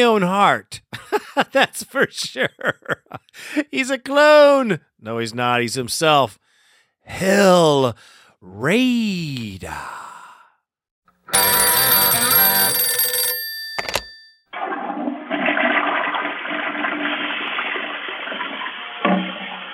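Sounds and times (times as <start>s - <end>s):
speech: 0.0s - 6.4s, 7.1s - 10.0s
bright ringing electronic tone: 11.4s - 14.4s
toilet flushing: 14.6s - 19.7s.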